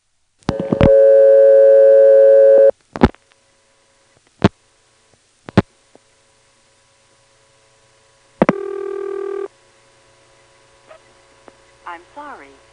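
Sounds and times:
telephone toll switch ringing tone on a vacant code: 0.5 - 2.7, 8.5 - 9.5.

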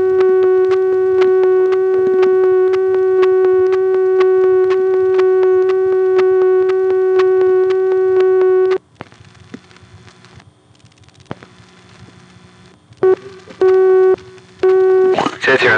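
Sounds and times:
telephone busy signal on a call to directory assistance: 0.0 - 8.8, 13.0 - 15.2
faint hissing telephone line noise: 0.0 - 15.7.

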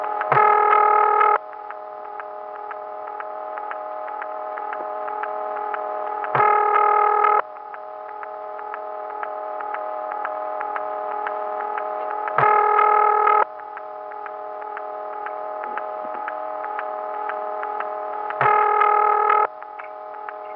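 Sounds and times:
1975 telephone exchange ring tone over the line: 0.0 - 1.4, 5.4 - 7.4, 11.0 - 13.4, 15.6 - 19.5.

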